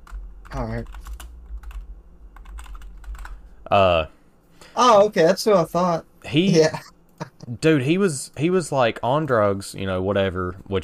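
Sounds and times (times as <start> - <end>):
typing on a keyboard: 0.0 - 1.8, 2.4 - 3.4
low hum: 0.0 - 10.8
speech: 0.5 - 1.1, 3.6 - 4.2, 4.8 - 6.9, 7.5 - 10.8.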